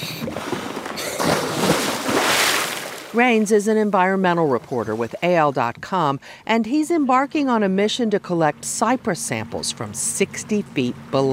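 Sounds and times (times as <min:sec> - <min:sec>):
rushing churning water and bubbles: 0:00.0 - 0:03.6
steady water noise near a boat off the Alabama coast: 0:00.0 - 0:11.3
scuba diver with a tank dropping backwards into the Gulf of Mexico: 0:00.2 - 0:03.2
speech: 0:03.1 - 0:11.3.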